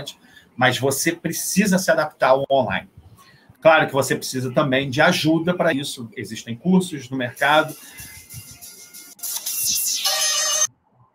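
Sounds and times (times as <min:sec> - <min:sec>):
speech: 0:00.0 - 0:03.0, 0:03.6 - 0:08.1
phone ringtone for an incoming call: 0:07.7 - 0:10.7.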